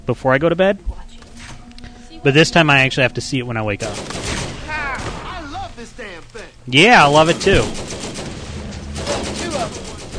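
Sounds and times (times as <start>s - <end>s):
speech: 0.1s - 1.0s, 2.2s - 4.3s, 5.8s - 8.0s
video game gunfire: 3.8s - 5.4s, 7.1s - 10.1s.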